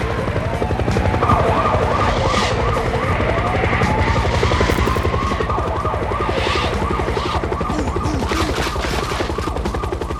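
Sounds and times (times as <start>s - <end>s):
police car siren wailing: 0.2s - 10.1s.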